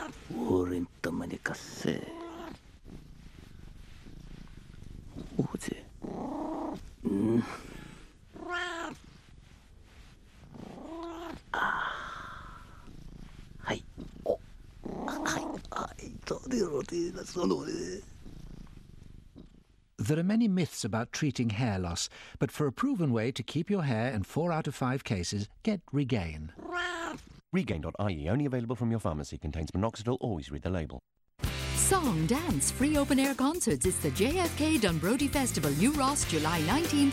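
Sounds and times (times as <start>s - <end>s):
cat purring: 0.0s - 20.0s, 34.1s - 37.1s
speech: 0.1s - 2.2s, 16.9s - 18.1s, 20.1s - 26.6s, 27.5s - 31.0s, 31.9s - 37.1s
cat meowing: 8.4s - 9.0s, 26.6s - 27.2s.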